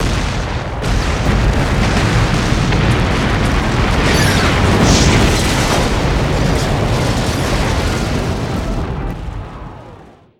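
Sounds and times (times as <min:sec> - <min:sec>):
large multiple explosions of destruction: 0:00.0 - 0:10.3.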